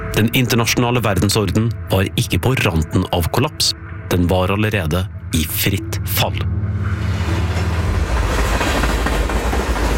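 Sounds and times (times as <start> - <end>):
speech: 0.2 - 7.0
train rumbling on rails: 6.5 - 9.9.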